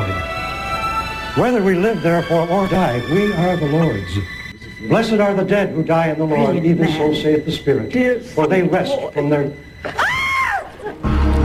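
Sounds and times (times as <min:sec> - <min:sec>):
dramatic music: 0:00.0 - 0:11.4
speech: 0:01.4 - 0:10.0
woman screaming in a soap opera scene: 0:09.9 - 0:11.0.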